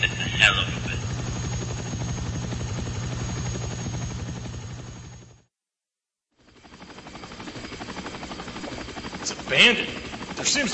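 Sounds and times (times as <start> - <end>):
helicopter with rapid rotor thudding and heavy engine roar: 0.0 - 5.5, 6.3 - 10.7
speech: 9.5 - 10.7.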